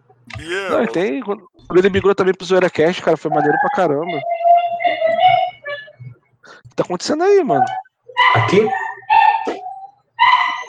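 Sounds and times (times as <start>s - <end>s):
speech: 0.4s - 5.0s, 6.8s - 8.8s
dog giving a brief sharp yip: 8.2s - 10.6s.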